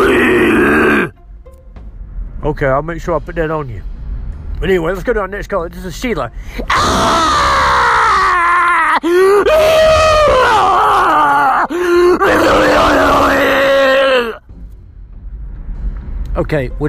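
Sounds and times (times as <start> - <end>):
caller groaning and screaming over the phone: 0.0 - 1.2, 6.6 - 14.4
speech: 2.5 - 3.9, 4.6 - 7.5, 9.0 - 13.5, 16.4 - 16.8.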